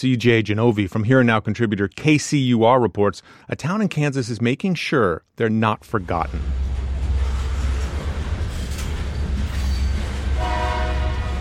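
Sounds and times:
speech: 0.0 - 6.6
grain-hauling freight train rumbling past in Concordia Kansas: 5.8 - 11.3
freight train horn blast: 10.2 - 11.3.

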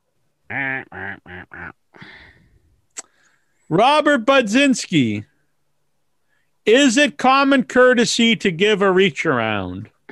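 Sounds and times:
person imitating duck quacks: 0.5 - 1.8
speech: 3.7 - 5.3, 6.6 - 10.1.

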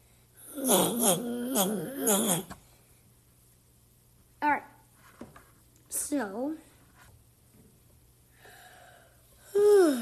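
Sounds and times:
person yawning: 0.5 - 2.5, 9.4 - 10.0
speech: 0.7 - 2.6, 6.1 - 6.7, 9.6 - 10.0.

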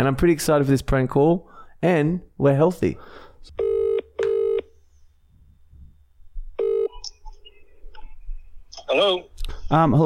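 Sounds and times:
speech: 0.0 - 3.8, 8.9 - 10.0
telephone ringback tone purring in a double burst: 3.6 - 4.6, 6.6 - 7.0
faint electronic chirps on the telephone line: 6.6 - 8.6.

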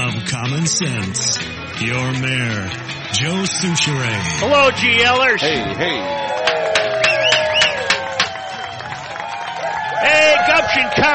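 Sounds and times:
speech: 0.3 - 6.3, 10.0 - 11.1
crowd cheering and applauding: 1.0 - 11.1
whistles over crowd noise: 6.8 - 9.0.

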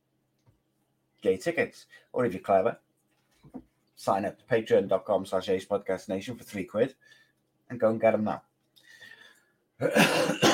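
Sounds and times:
speech: 1.2 - 2.8, 3.4 - 8.5, 9.8 - 10.5
person coughing harshly: 9.8 - 10.5.

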